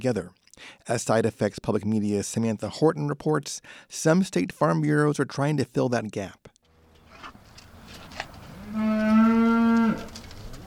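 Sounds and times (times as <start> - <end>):
speech: 0.0 - 6.4
beef cattle mooing at evening feeding on a family farm in northern Indiana: 8.5 - 10.1.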